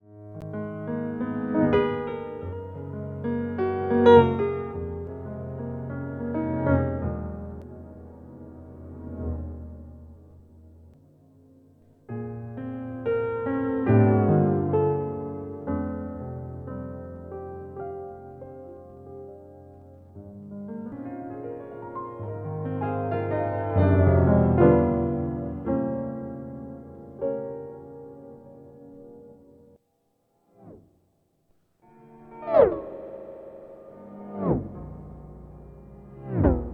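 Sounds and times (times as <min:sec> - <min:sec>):
Yamaha C7 grand piano through Waves Doppler effect: 0:00.0 - 0:36.7.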